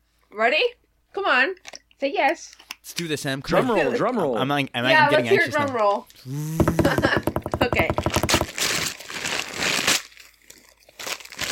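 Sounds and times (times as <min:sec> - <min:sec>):
speech: 0:00.3 - 0:08.2
wrapping paper crumpled and torn: 0:08.5 - 0:11.5.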